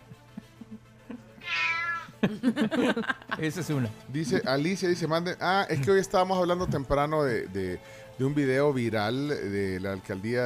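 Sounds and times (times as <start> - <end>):
loud drawn-out cat meow: 1.4 - 2.2
laughter: 2.1 - 4.5
speech: 2.2 - 10.4.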